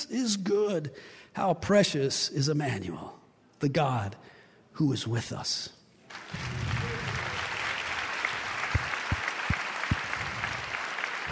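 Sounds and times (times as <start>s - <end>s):
speech: 0.0s - 6.6s
audience clapping hands: 6.1s - 11.3s.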